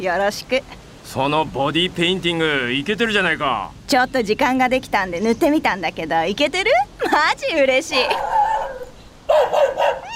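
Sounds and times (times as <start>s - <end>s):
speech: 0.0s - 8.4s
dog whining and yelping: 8.1s - 10.1s.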